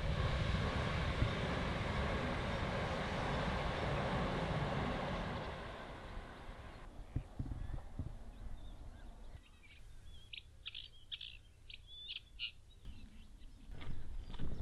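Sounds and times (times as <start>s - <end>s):
train rumbling past with rhythmic clattering: 0.0s - 7.0s
outdoor ambience: 0.0s - 14.5s.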